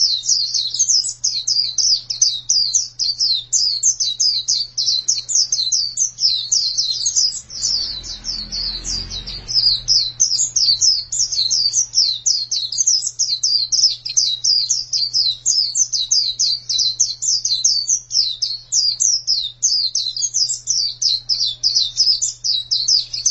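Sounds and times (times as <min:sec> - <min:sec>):
faint hum: 0:00.0 - 0:23.3
white-eye twittering song: 0:00.0 - 0:23.3
low rumble: 0:07.2 - 0:11.6.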